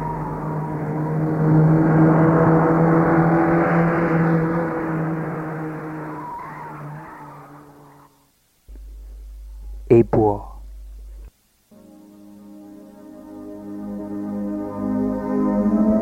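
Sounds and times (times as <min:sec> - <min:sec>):
car engine driving away: 0:00.0 - 0:09.9, 0:13.1 - 0:15.9.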